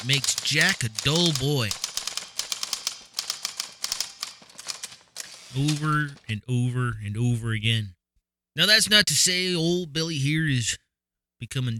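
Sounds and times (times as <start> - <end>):
speech: 0.0 - 1.8, 5.5 - 8.0, 8.6 - 10.8, 11.4 - 11.7
typewriter keys clacking: 0.0 - 6.3.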